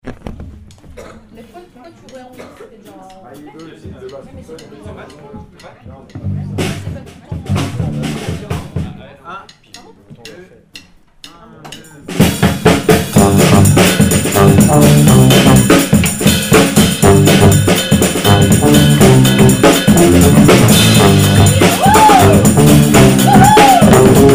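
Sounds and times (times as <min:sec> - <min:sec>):
brass band playing bass part: 0:06.2 - 0:06.9, 0:07.5 - 0:08.5, 0:12.8 - 0:24.3.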